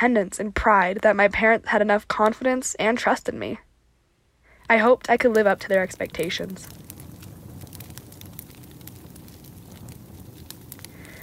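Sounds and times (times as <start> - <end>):
speech: 0.0 - 3.7, 4.7 - 6.8
campfire crackling: 4.5 - 11.2.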